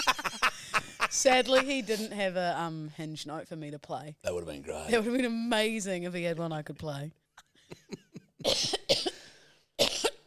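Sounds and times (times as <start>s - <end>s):
speech: 1.2s - 7.2s
wet harsh cough bringing up phlegm: 8.4s - 10.2s.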